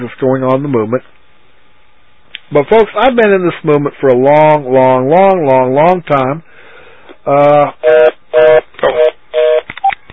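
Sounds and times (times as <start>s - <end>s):
speech: 0.0s - 1.2s, 2.5s - 6.5s, 7.2s - 8.6s
telephone ringing with an electronic tone: 7.8s - 10.0s.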